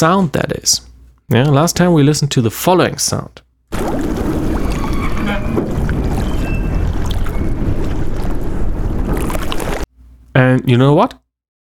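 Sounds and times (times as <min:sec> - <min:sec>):
speech: 0:00.0 - 0:04.2, 0:10.4 - 0:11.2
waves crashing against a wooden quay on the River Tejo in Lisbon: 0:03.8 - 0:09.9
wind noise: 0:03.8 - 0:09.9.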